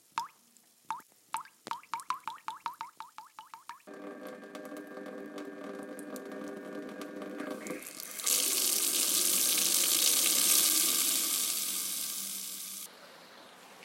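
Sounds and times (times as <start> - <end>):
water dripping from a tap: 0.0 - 12.9
water running from a tap: 3.9 - 12.9.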